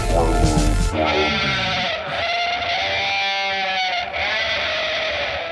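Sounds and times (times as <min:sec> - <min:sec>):
sheep bleat with heavily distorted buzzy electric guitar timbre: 0:00.1 - 0:05.4.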